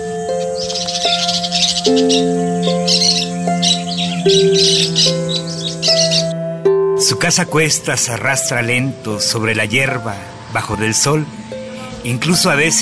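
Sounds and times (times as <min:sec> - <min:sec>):
parrot chattering and squawking: 0:00.0 - 0:06.4
sustained tones shifting pitch: 0:00.0 - 0:12.8
speech: 0:01.4 - 0:02.5, 0:07.2 - 0:12.8.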